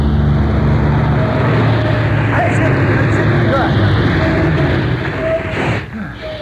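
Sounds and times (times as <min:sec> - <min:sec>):
large bus engine rumbling as the bus pulls up to a stop: 0:00.0 - 0:06.4.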